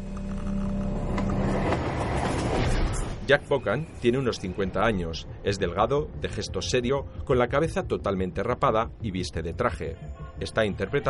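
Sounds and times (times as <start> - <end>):
train rumbling through city streets at night: 1.0 - 8.0
speech: 3.3 - 11.0.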